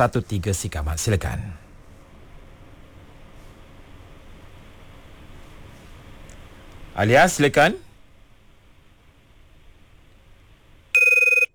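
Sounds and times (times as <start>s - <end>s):
speech: 0.0s - 1.6s, 7.0s - 7.8s
electronic telephone ring tone on a call being placed: 11.0s - 11.5s.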